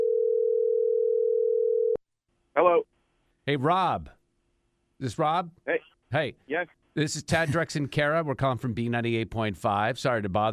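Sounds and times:
telephone dial tone: 0.0s - 2.0s
speech: 3.5s - 4.2s, 5.0s - 10.5s.

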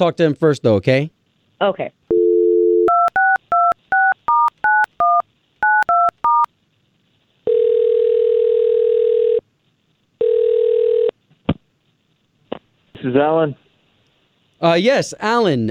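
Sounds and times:
speech: 0.0s - 2.0s, 13.0s - 13.6s, 14.6s - 15.6s
telephone dial tone: 2.1s - 6.5s, 7.5s - 9.4s, 10.2s - 11.1s.

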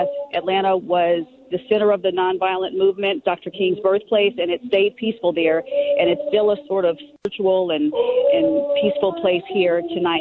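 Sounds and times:
person singing long sustained notes outdoors: 0.0s - 2.3s, 3.6s - 7.2s, 7.9s - 10.2s
speech: 0.0s - 10.2s.

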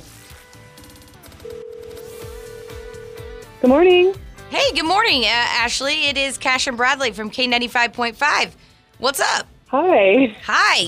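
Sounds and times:
telephone dialing tones: 1.4s - 3.5s
steady loud phone tone: 1.4s - 4.0s
speech: 3.6s - 10.8s.

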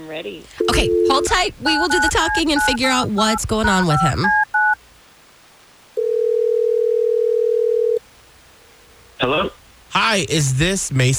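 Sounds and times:
speech: 0.1s - 4.5s, 9.3s - 11.1s
electronic telephone ringing tone on the line: 0.6s - 4.8s, 6.0s - 8.0s.

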